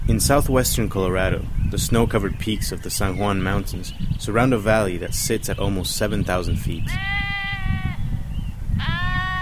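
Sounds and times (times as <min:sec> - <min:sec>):
speech: 0:00.1 - 0:07.2
flock of sheep bleating while grazing on dry meadow grass in southwestern Colorado: 0:06.9 - 0:08.0, 0:08.8 - 0:09.3.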